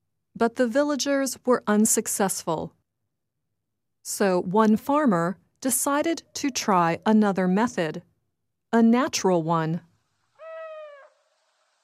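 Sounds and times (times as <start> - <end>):
speech: 0.4 - 2.8, 4.0 - 8.1, 8.7 - 9.9
owl hooting: 10.3 - 11.5.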